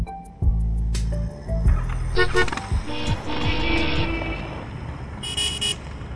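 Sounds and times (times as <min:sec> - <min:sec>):
traffic noise on a busy street: 0:00.2 - 0:06.1
car horns honking in a traffic jam on a busy street: 0:02.1 - 0:05.9.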